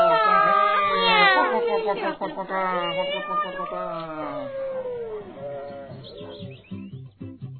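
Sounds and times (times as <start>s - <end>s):
laughter: 0.0s - 4.6s
person imitating cat meows: 2.5s - 6.0s.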